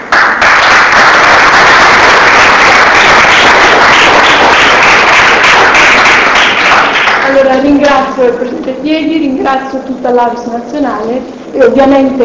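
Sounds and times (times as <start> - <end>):
large audience applauding: 0.0 - 7.5
speech: 7.4 - 12.2.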